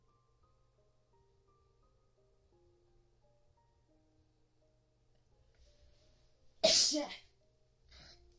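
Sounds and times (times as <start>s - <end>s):
person sneezing: 6.6s - 7.2s
speech: 6.9s - 7.2s.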